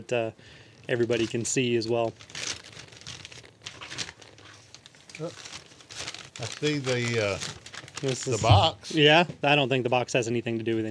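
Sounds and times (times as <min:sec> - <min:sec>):
speech: 0:00.0 - 0:02.5, 0:05.2 - 0:05.5, 0:06.4 - 0:10.8
gift wrapping paper being torn open: 0:00.9 - 0:08.6.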